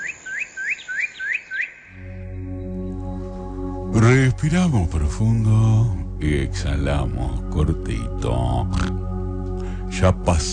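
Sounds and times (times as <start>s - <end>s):
small bird singing rising chirps in a forest: 0.0s - 2.2s
steady low droning tone: 1.9s - 10.5s
speech: 4.0s - 9.1s, 9.9s - 10.5s.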